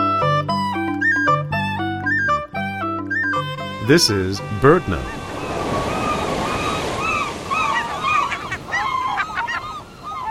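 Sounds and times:
gulls mewing and yelping on beaches in August: 0.0 - 10.2
wind: 3.5 - 10.2
steady crashing surf: 3.8 - 10.2
speech: 3.9 - 5.2.

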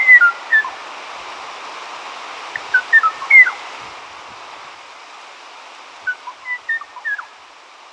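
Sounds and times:
Kauai O'o song with clear flute-like whistled notes: 0.0 - 0.7, 2.6 - 3.6, 6.0 - 7.3
steady hiss: 0.0 - 7.9.

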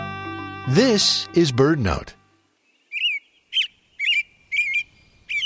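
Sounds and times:
speech: 0.8 - 2.2
American robin giving high clear chirping calls: 2.6 - 5.4.

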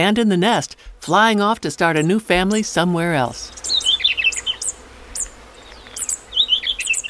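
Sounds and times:
speech: 0.0 - 3.7
faint outdoor hiss: 0.0 - 7.0
fairy wren calling with its family's password note: 1.8 - 7.0.

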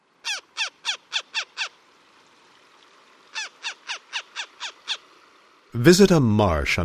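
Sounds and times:
northern harrier calling: 0.2 - 1.8, 3.3 - 5.1
speech: 5.8 - 6.8.

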